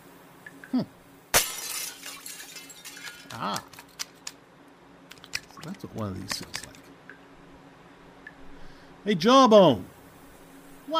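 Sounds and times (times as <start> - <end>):
speech: 0.7 - 1.0, 3.3 - 3.8, 5.6 - 6.8, 9.0 - 9.9
glass shattering: 1.3 - 3.4
tinkling glass shards settling: 1.4 - 3.4.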